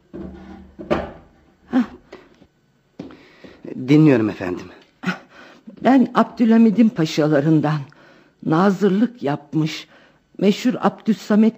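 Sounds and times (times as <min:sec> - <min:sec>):
wooden chair dragged across the floor: 0:00.0 - 0:01.6
speech: 0:03.8 - 0:04.8, 0:05.8 - 0:11.5.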